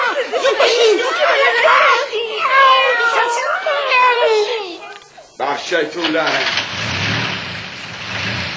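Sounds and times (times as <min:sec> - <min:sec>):
laughter: 0:00.0 - 0:05.4
speech: 0:05.7 - 0:06.7
milk truck engine starting: 0:06.0 - 0:08.5.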